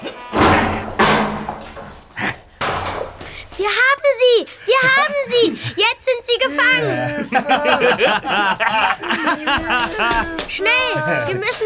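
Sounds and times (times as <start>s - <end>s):
heavy door slamming shut: 0.3s - 3.6s
speech: 4.4s - 11.6s
laughter: 6.7s - 11.6s.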